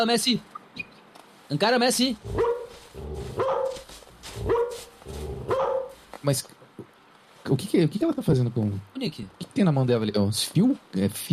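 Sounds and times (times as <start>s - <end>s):
speech: 0.0s - 0.9s, 1.5s - 3.8s, 6.2s - 6.6s, 7.5s - 11.3s
steady low hum: 0.0s - 11.3s
dog barking with sharp yelps: 2.3s - 6.0s.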